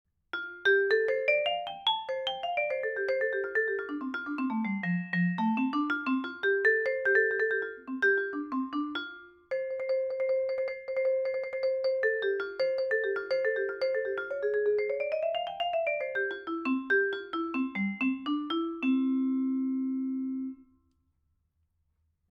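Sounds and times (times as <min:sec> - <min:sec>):
vibraphone: 0:00.4 - 0:20.7.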